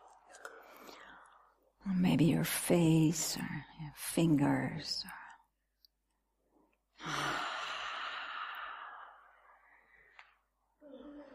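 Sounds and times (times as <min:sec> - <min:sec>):
speech: 0:01.8 - 0:05.2
long breathy yawn: 0:07.0 - 0:09.4.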